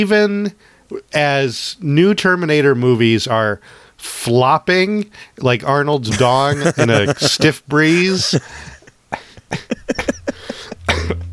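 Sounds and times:
speech: 0.0 - 10.1
person laughing: 6.1 - 11.3
person coughing in wheezy bursts: 8.4 - 11.3.

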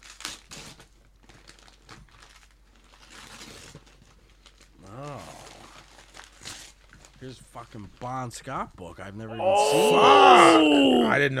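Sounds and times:
gift wrapping paper on a present torn open and crumpled: 0.0 - 7.2
speech: 7.2 - 11.3.

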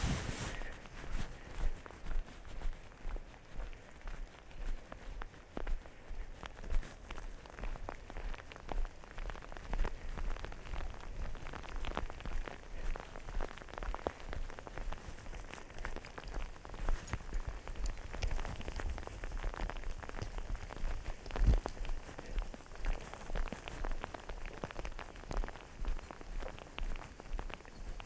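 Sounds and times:
footsteps: 0.0 - 28.0
steady rain pattering on a surface and hood in a small wooded park beside a lake: 7.3 - 28.0.

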